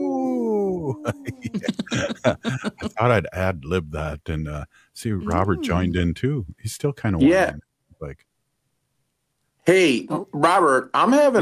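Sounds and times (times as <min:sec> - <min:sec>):
person imitating a wolf howl: 0:00.0 - 0:02.9, 0:05.2 - 0:05.9
laughter: 0:00.8 - 0:03.9, 0:05.2 - 0:06.1
speech: 0:00.9 - 0:08.3, 0:09.6 - 0:11.4.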